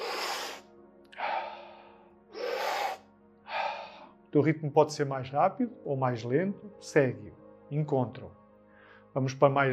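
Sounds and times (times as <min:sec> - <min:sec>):
slow breathing in and out in a guided breathing exercise: 0:00.0 - 0:04.2, 0:08.6 - 0:09.1
speech: 0:04.3 - 0:08.4, 0:09.2 - 0:09.7.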